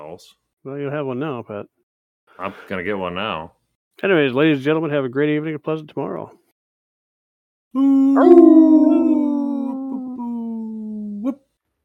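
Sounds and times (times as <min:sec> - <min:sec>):
speech: 0:00.1 - 0:06.4, 0:07.7 - 0:09.0
dog howling: 0:08.1 - 0:10.0.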